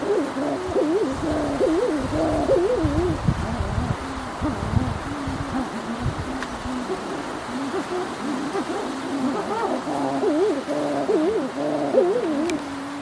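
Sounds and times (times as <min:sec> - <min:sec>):
birds giving wavering nasal notes: 0:00.0 - 0:13.0.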